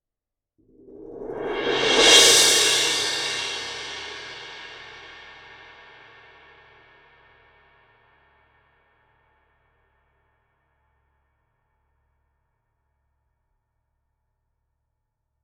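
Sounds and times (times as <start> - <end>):
small symphonic suspended cymbal swell: 0.8 - 6.2.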